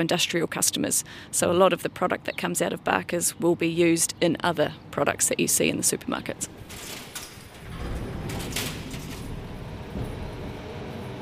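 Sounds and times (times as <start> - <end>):
speech: 0.0 - 7.2
machinery roar and clatter inside a fruit-processing factory: 6.3 - 11.2.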